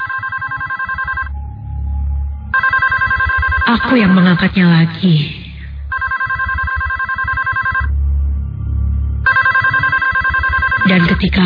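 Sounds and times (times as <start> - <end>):
telephone ringing in a room: 0.0 - 1.3, 2.5 - 4.4, 5.9 - 7.9, 9.2 - 11.4
low hum: 1.1 - 6.0, 7.6 - 11.4
speech: 3.7 - 5.4, 10.9 - 11.4.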